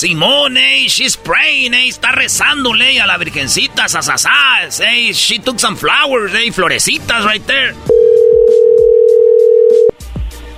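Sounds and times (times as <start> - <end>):
speech: 0.0 - 8.0
telephone tone on an unanswered call: 7.9 - 10.0.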